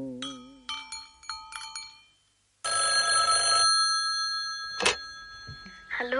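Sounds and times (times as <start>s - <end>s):
telephone ringing with chiming tones: 2.7s - 6.0s.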